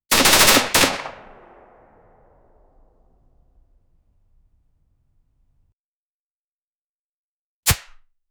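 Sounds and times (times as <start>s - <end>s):
10mm pistol gunshot: 0.6s - 2.2s.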